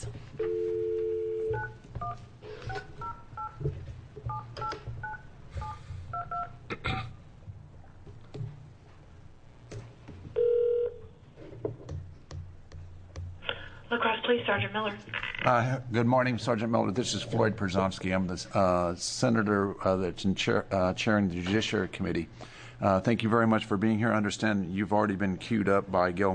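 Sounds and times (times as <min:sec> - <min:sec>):
low hum: 0:00.0 - 0:26.3
steady telephone tone: 0:00.4 - 0:03.6, 0:10.4 - 0:11.1
speech: 0:14.3 - 0:26.3.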